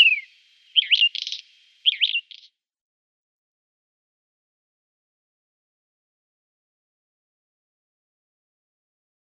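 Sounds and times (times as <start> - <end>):
whinchat song: 0.0 - 2.5.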